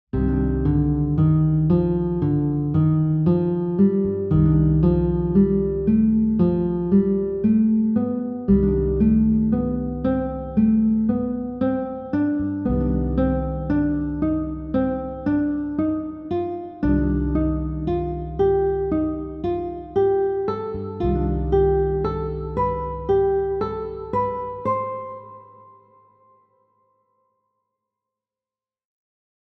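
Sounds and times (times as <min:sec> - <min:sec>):
guitar playing four-note ascending melodic minor scale pattern: 0:00.2 - 0:26.0.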